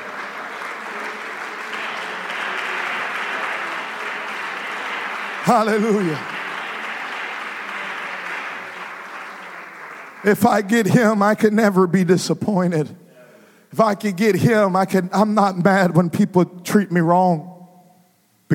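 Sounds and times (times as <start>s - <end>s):
crowd of many hands clapping: 0.0s - 11.4s
speech: 5.4s - 6.4s, 10.2s - 13.0s, 13.7s - 17.5s.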